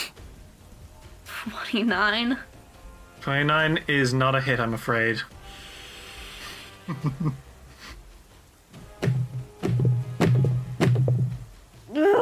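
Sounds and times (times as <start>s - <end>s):
speech: 1.4s - 2.6s, 3.2s - 5.3s, 6.9s - 7.4s
person hitting their head against a tabletop: 9.0s - 11.4s.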